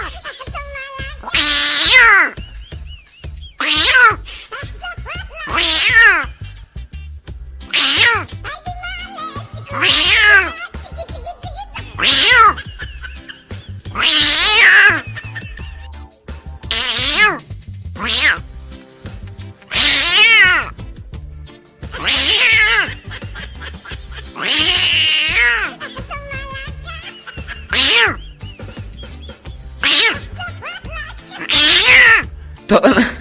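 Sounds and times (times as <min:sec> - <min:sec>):
cat meowing with drawn-out wavering cries: 0:00.8 - 0:02.4, 0:03.6 - 0:04.2, 0:05.4 - 0:06.4, 0:07.7 - 0:08.3, 0:09.0 - 0:10.8, 0:11.8 - 0:12.7, 0:13.9 - 0:15.4, 0:16.6 - 0:17.4, 0:18.0 - 0:18.4, 0:19.7 - 0:20.8, 0:21.9 - 0:23.4, 0:24.2 - 0:28.4, 0:29.8 - 0:32.3
laughter: 0:02.3 - 0:03.6, 0:10.2 - 0:16.1, 0:22.5 - 0:31.4, 0:32.7 - 0:33.1.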